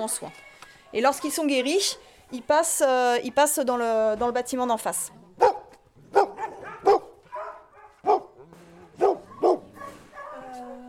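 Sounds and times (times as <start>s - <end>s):
speech: 0.0s - 5.6s
old dogs barking in short sharp bursts at an animal shelter: 5.4s - 10.6s
old dogs whining and yipping at an animal shelter: 6.2s - 10.6s.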